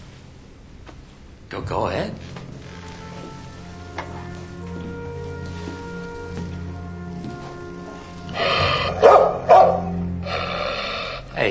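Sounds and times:
speech: 1.5 - 2.4
dog snarling: 8.3 - 11.4
dog barking: 8.4 - 10.1.

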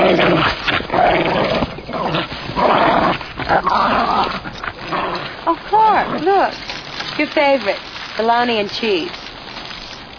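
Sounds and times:
dog growling and yipping in a playful tussle: 0.0 - 6.6
speech: 7.3 - 9.2.

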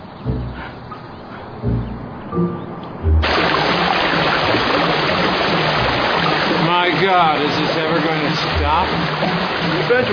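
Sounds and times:
low thumps: 0.0 - 10.1
water gushing from a burst main: 3.2 - 10.1
speech: 7.1 - 7.6, 8.8 - 10.1.

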